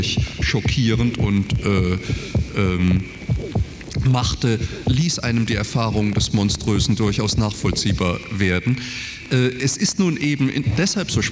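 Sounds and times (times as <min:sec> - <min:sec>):
speech: 0:00.0 - 0:03.2, 0:04.0 - 0:11.2
amplified human heartbeat from a film: 0:00.0 - 0:08.9
droning hum: 0:00.0 - 0:11.2.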